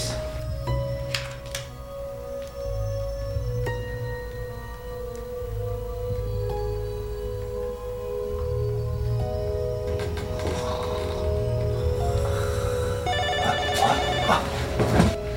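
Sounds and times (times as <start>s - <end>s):
low rumbling hum: 0.0s - 13.6s
telephone ringing with electronic trill: 13.1s - 14.9s.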